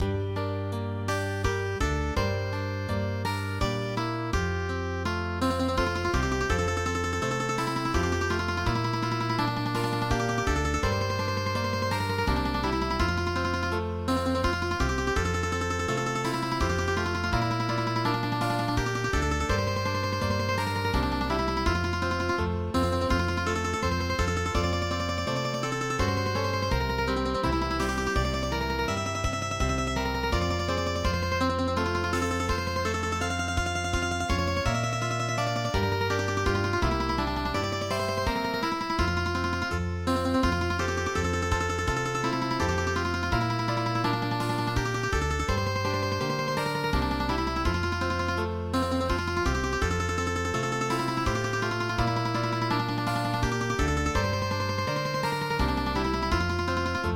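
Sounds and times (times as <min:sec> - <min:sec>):
traditional mandolin music in MIDI: 0:00.0 - 0:57.1.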